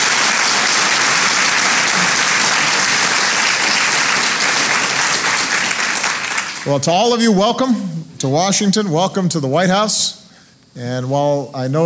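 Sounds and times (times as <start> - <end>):
loud applause from a large audience: 0.0 - 6.7
speech: 6.6 - 10.2, 10.8 - 11.8.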